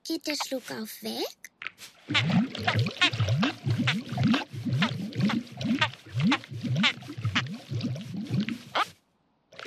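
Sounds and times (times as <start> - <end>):
speech: 0.1 - 4.3
elephant drinking lots of water: 2.0 - 8.9.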